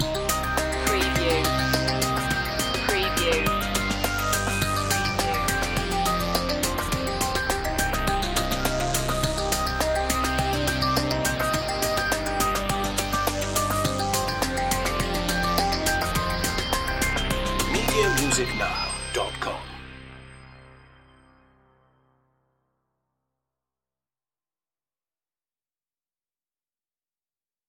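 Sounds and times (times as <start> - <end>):
ambient breakbeat loop: 0.0 - 20.3.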